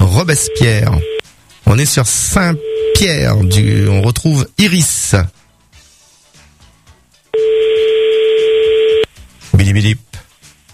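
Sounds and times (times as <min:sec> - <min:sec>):
speech: 0:00.2 - 0:05.4, 0:09.6 - 0:10.0
steady telephone tone placing a call to a radio listener: 0:00.4 - 0:01.2, 0:02.5 - 0:03.9, 0:07.4 - 0:09.1.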